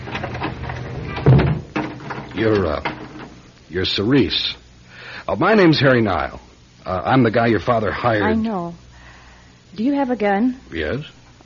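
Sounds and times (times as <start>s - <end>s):
front door swinging shut with a solid thud: 0.0s - 2.3s
speech: 2.4s - 2.9s, 3.7s - 4.6s, 5.3s - 8.8s, 9.7s - 11.4s.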